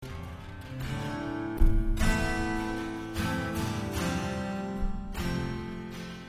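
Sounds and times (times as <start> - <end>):
strummed A minor and F chords: 0.0 - 6.2.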